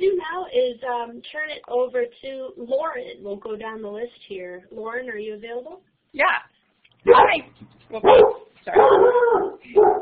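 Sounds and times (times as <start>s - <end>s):
speech: 0.9s - 10.0s
startled dog barking: 7.0s - 10.0s.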